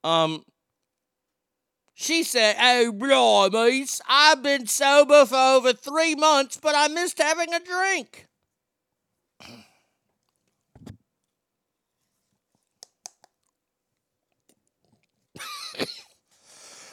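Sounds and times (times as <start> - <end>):
speech: 0.0 - 0.5, 2.0 - 8.3, 9.4 - 9.6, 15.8 - 16.0
harsh coughing from someone who swallowed snuff: 9.4 - 9.8, 15.4 - 16.2
faint mouth clicks and noises: 12.8 - 13.6.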